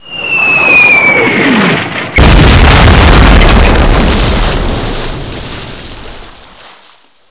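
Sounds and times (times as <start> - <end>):
bomb hit: 1.1 - 6.3.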